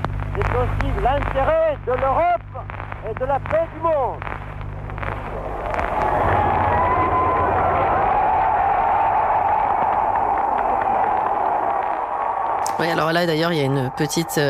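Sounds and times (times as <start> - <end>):
speech: 0.4 - 2.4, 3.0 - 4.3, 12.8 - 14.4
large crowd clapping on an old recording: 5.0 - 14.4.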